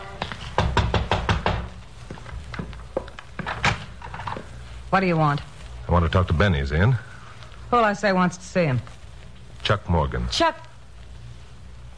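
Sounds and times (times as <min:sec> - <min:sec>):
faint low hum: 0:00.0 - 0:11.9
knocking on the back door of a single-family frame house: 0:00.5 - 0:01.8
speech: 0:04.9 - 0:07.1, 0:07.7 - 0:09.0, 0:09.6 - 0:10.6.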